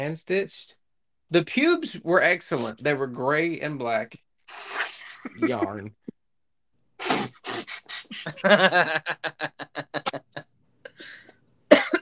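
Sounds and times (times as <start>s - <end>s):
speech: 0.0s - 6.0s, 8.2s - 10.4s
person coughing: 5.3s - 5.8s, 10.9s - 11.9s
laughter: 5.3s - 6.0s, 8.1s - 10.4s
wheezy gasps: 7.0s - 8.2s, 10.9s - 11.4s.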